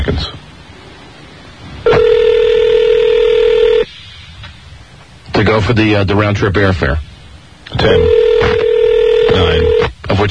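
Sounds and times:
telephone ringing with a steady electronic tone: 0:01.9 - 0:03.9, 0:07.8 - 0:09.9
speech: 0:05.5 - 0:07.1, 0:07.7 - 0:08.2, 0:09.4 - 0:10.3.

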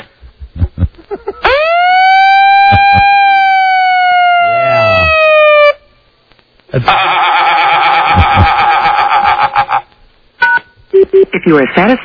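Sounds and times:
harsh buzzing electronic blast: 0:00.3 - 0:05.5
laughter: 0:00.5 - 0:01.6, 0:06.7 - 0:09.9
siren wailing: 0:01.5 - 0:05.8
speech: 0:11.5 - 0:12.0.

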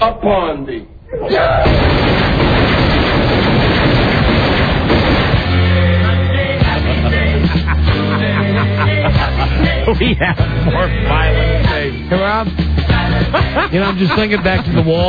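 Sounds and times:
speech: 0:00.0 - 0:02.0, 0:09.9 - 0:15.0
sharp pops: 0:01.6 - 0:06.7
dense booming movie gunfire: 0:01.6 - 0:06.8
laughter: 0:06.6 - 0:11.6, 0:12.9 - 0:15.0.

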